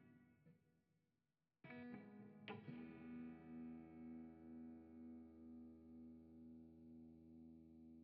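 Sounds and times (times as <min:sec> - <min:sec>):
guitar effects: 0:01.7 - 0:07.9.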